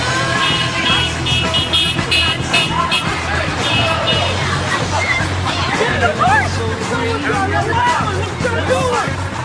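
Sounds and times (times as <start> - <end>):
loud dense city traffic noise: 0.0 - 9.4
murmur of crowd voices: 0.0 - 9.4
passing vehicles: 0.0 - 9.4
car horns honking in busy city traffic: 0.2 - 4.5.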